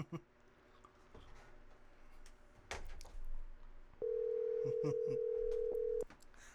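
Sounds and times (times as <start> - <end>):
telephone ringback tone during an outgoing call: 4.0 - 6.0.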